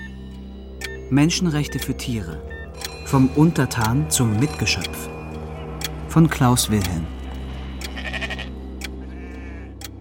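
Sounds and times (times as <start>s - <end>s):
speech: 1.1s - 5.2s, 6.1s - 7.2s
sheep bleating: 7.8s - 9.8s.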